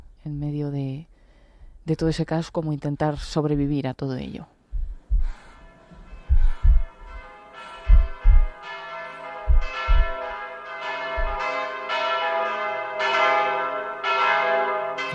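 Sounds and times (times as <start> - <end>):
speech: 0.2 - 1.1, 1.8 - 4.6
deep heartbeat-like thuds: 4.7 - 7.2, 7.8 - 8.6, 9.4 - 10.3, 11.2 - 11.4
bells ringing: 5.5 - 15.1.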